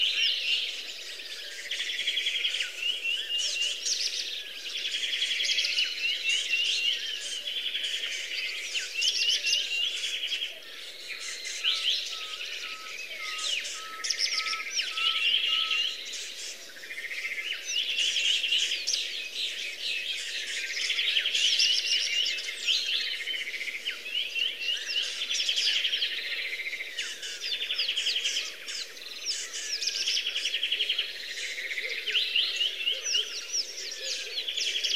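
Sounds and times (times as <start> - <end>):
jungle ambience: 0.0 - 34.9.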